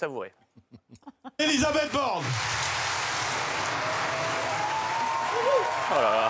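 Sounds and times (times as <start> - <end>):
speech: 0.0 - 2.6, 5.4 - 6.2
satisfied audience in a hall applauding at a political party congress: 1.7 - 6.2.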